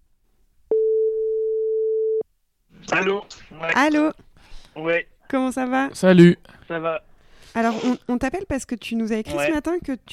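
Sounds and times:
long telephone ringback tone: 0.7s - 2.2s
speech: 3.0s - 10.1s.

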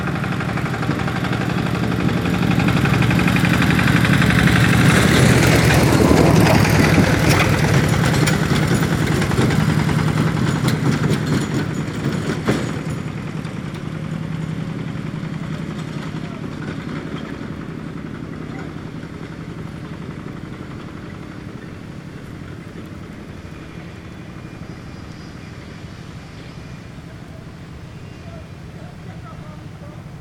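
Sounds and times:
tractor engine rumbling past a construction site: 0.0s - 30.1s
faint clatter: 3.4s - 24.8s.

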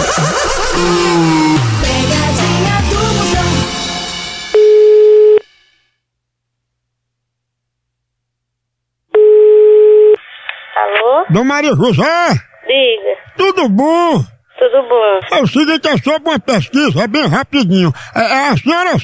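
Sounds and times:
music: 0.0s - 4.5s
telephone ringback tones while a call is placed: 4.6s - 5.5s, 9.2s - 10.2s
speech: 11.3s - 19.0s.

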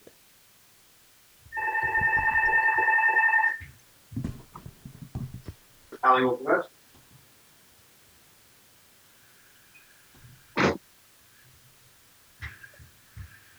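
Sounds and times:
telephone ringing with a steady electronic tone: 1.5s - 4.8s
handling noises: 1.5s - 6.1s.

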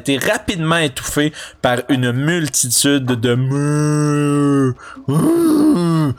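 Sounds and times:
speech: 0.0s - 6.1s
voice imitating a herd of cows mooing: 3.5s - 6.1s.

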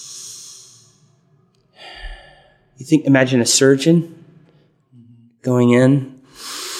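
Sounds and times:
deep breath: 0.0s - 2.8s, 6.3s - 6.7s
speech: 2.8s - 4.2s, 5.5s - 6.1s.

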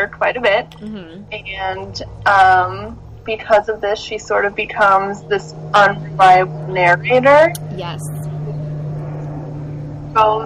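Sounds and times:
speech: 0.0s - 8.4s, 10.2s - 10.4s
airplane flying overhead: 1.4s - 7.4s, 8.2s - 10.4s.

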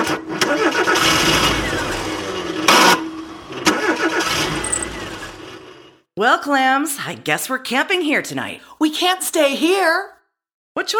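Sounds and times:
car engine cranking without catching: 0.0s - 2.9s, 3.6s - 5.5s
speech: 6.2s - 10.2s, 10.8s - 10.9s.

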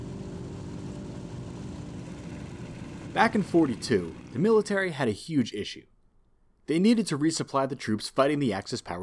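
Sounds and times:
flying boat propeller engines roaring: 0.0s - 4.8s
speech: 3.2s - 5.9s, 6.7s - 9.0s.

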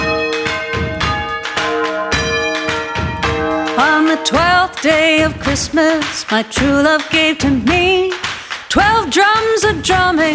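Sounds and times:
several bells ringing: 0.0s - 4.8s
speech: 3.8s - 10.3s.

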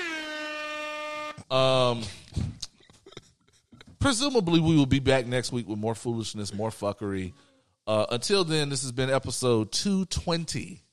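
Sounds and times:
air horn blast: 0.0s - 1.9s
speech: 1.5s - 2.5s, 4.0s - 10.8s.

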